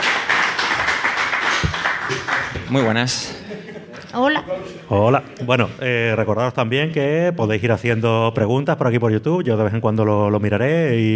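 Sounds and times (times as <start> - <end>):
audience applause: 0.0 - 3.2
speech: 2.7 - 3.4, 4.1 - 11.1
laughter: 3.0 - 4.8.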